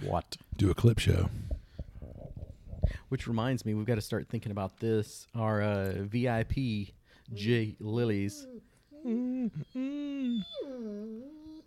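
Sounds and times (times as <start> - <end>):
speech: 0.1 - 1.4, 3.1 - 11.4
puppy whimpering and howling: 8.2 - 11.6.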